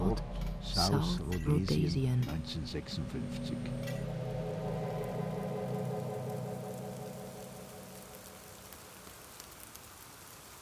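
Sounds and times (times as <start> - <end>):
speech: 0.2 - 4.1
humming rain on a dark November afternoon: 2.6 - 10.6.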